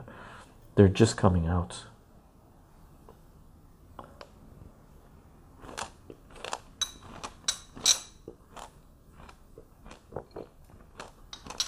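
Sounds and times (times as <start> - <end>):
speech: 0.8 - 1.9
biting and chewing crunchy pomegranate: 5.6 - 11.6.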